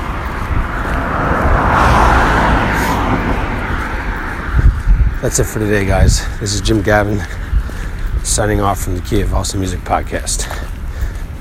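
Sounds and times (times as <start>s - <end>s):
car driving by with broad road noise: 0.0s - 5.5s
speech: 5.2s - 7.5s, 8.2s - 10.7s.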